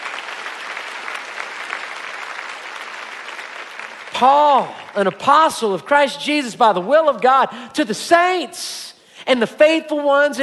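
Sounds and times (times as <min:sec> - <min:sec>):
audience applause: 0:00.0 - 0:05.2
speech: 0:04.2 - 0:10.4.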